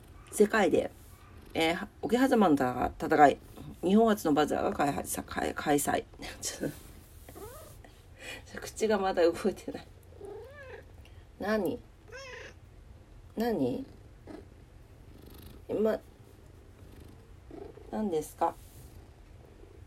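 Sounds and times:
cat purring: 0.0s - 19.8s
speech: 0.4s - 6.8s, 8.3s - 9.9s, 11.4s - 11.9s, 13.4s - 14.4s, 15.7s - 16.1s, 17.9s - 18.6s
cat meowing: 10.2s - 10.8s, 12.1s - 12.6s.

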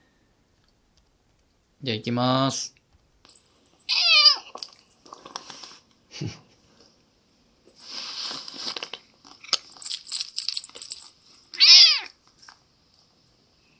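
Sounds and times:
speech: 1.8s - 2.8s, 6.2s - 6.4s
cat meowing: 3.9s - 4.5s, 11.6s - 12.2s.

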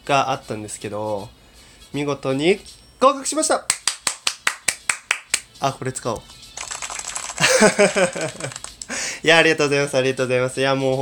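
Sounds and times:
speech: 0.1s - 3.8s, 5.6s - 6.4s, 7.6s - 8.6s, 9.2s - 10.9s
applause sound effect: 3.7s - 5.4s, 6.6s - 8.8s
laughter: 7.4s - 8.6s.

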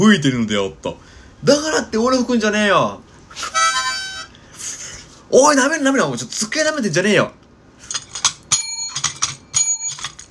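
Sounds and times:
speech: 0.0s - 3.6s, 5.3s - 7.4s
bicycle bell ringing with a bright metallic tone: 8.5s - 10.2s.

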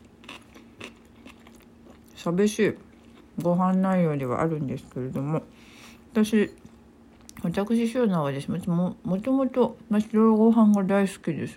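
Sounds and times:
crunchy chewing of pickled daikon radish: 0.0s - 3.5s
faint steady hum: 0.0s - 11.5s
speech: 2.2s - 6.6s, 7.4s - 11.5s.

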